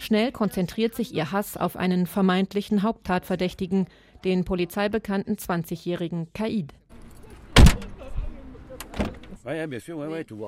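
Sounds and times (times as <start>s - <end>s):
speech: 0.1s - 6.8s, 9.4s - 10.4s
black taxi van door slamming shut: 7.6s - 8.0s.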